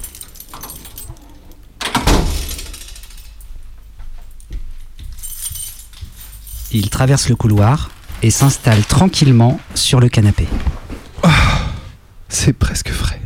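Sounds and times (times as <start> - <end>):
lock and latch of a radio station door clacking: 0.0 - 3.4
keys jingling: 0.0 - 10.0
rattling and handling noises: 0.0 - 11.2
speech: 6.7 - 11.4, 12.4 - 13.1.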